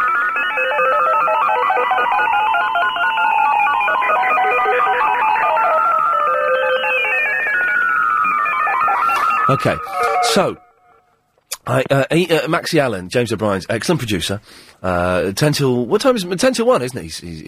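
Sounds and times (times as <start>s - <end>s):
radio phone-in line ringing with electronic warbling tone: 0.0s - 11.1s
speech: 9.5s - 10.6s, 11.6s - 17.4s.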